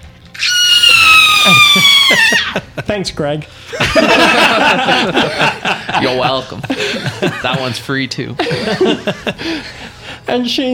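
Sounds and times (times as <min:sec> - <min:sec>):
voice imitating a creature's shrill screech: 0:00.3 - 0:02.6
laughter: 0:01.4 - 0:03.0, 0:03.7 - 0:09.9
speech: 0:01.5 - 0:10.7.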